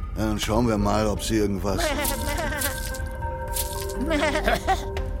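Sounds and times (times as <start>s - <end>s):
speech: 0.2s - 2.7s, 4.0s - 5.1s
water being poured over a goat: 1.8s - 4.8s.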